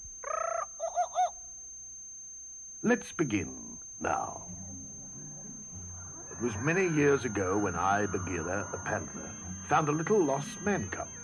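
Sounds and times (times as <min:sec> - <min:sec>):
jungle bird call with buzzy warbling trill and rising hoots: 0:00.2 - 0:01.5, 0:04.3 - 0:11.2
speech: 0:02.8 - 0:04.8, 0:06.4 - 0:11.2
steady high tone: 0:02.8 - 0:11.2.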